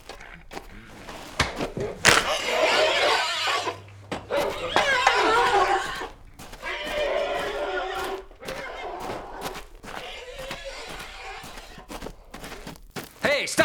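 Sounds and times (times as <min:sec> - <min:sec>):
cinnamon-coloured three-year-old horse snorting: 0:00.0 - 0:13.2
shuffling: 0:00.0 - 0:13.6
cinnamon-coloured three-year-old horse neighing: 0:01.7 - 0:12.2.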